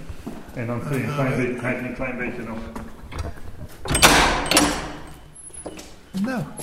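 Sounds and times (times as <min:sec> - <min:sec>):
speech: 0:00.6 - 0:02.9, 0:06.2 - 0:06.6
small door being pulled open with scraping and rustling: 0:03.0 - 0:06.0.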